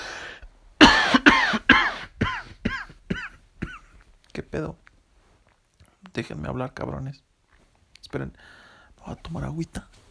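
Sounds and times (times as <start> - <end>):
ill person coughing: 0.8 - 4.0
speech: 4.4 - 4.8, 6.1 - 7.3, 8.1 - 10.0.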